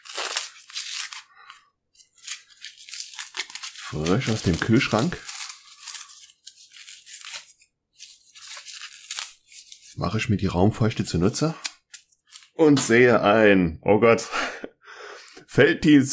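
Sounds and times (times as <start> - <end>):
paper and tape tearing and crinkling as a package is unwrapped: 0.0 - 10.1
speech: 3.9 - 5.3, 10.0 - 11.7, 12.6 - 14.4, 15.6 - 16.1.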